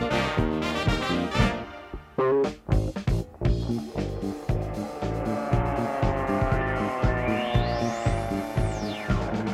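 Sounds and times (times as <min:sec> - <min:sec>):
bouncy musical backing: 0:00.0 - 0:09.5
cartoonish car sound effect engine revving: 0:03.4 - 0:09.5
rising then falling whistle-like sweep: 0:06.4 - 0:09.5.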